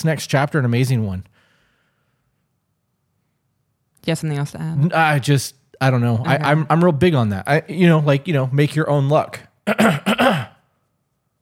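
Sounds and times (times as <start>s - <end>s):
speech: 0.0s - 1.3s, 4.0s - 10.5s
aggressive throat clearing in harsh rasping bursts: 9.7s - 10.7s.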